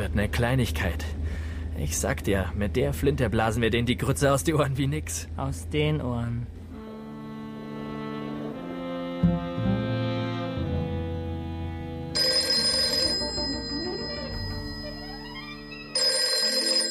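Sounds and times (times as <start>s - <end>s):
speech: 0.0s - 6.6s
low tone: 0.0s - 16.8s
telephone ringing: 12.2s - 16.8s.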